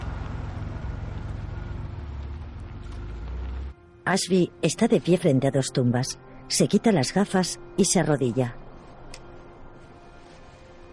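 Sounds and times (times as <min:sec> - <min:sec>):
car engine humming as the car turns right into a cemetery: 0:00.0 - 0:03.8
speech: 0:04.1 - 0:08.6.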